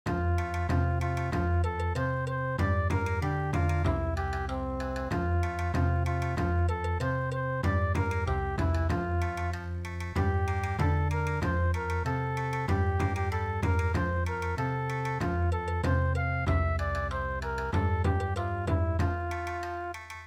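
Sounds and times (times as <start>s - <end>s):
traditional Japanese folk dance music in midi: 0.1s - 20.2s.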